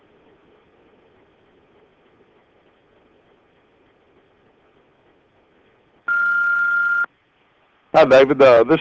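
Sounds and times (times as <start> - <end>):
electronic beep from an answering machine: 6.1 - 7.1
speech: 7.9 - 8.7.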